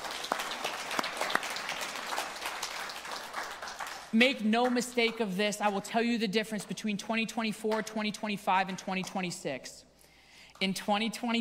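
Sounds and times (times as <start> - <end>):
congregation applauding with many hands clapping: 0.0 - 5.2
speech: 4.1 - 9.9, 10.6 - 11.4.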